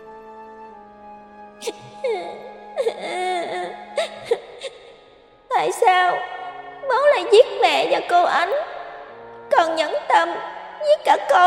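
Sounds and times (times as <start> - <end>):
baby crying: 1.6 - 4.8
speech: 1.6 - 4.8, 5.6 - 8.7, 9.5 - 11.4.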